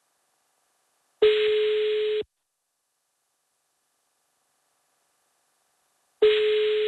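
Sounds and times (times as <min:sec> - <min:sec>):
ringback tone of an outgoing phone call: 0:01.2 - 0:02.3, 0:06.2 - 0:06.8.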